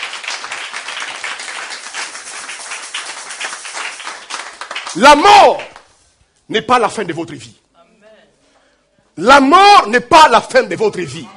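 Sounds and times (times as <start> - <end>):
church congregation clapping: 0.0 - 6.0
speech: 4.9 - 5.7, 6.5 - 7.6, 9.2 - 11.3.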